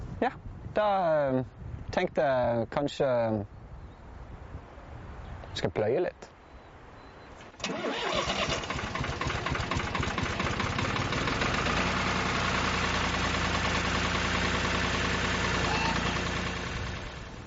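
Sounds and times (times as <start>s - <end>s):
speech: 0.2s - 3.5s, 5.5s - 6.3s
tractor engine cranking and idling: 7.6s - 17.4s.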